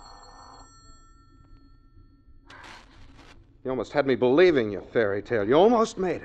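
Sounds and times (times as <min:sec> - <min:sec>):
telephone ringing with bright bell tone: 0:00.0 - 0:03.0
speech: 0:03.6 - 0:06.2.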